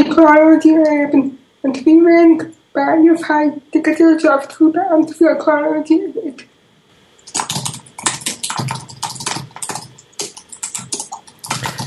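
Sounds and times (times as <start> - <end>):
speech: 0.0 - 6.5
fingers typing rapidly on a computer keyboard: 7.2 - 11.8.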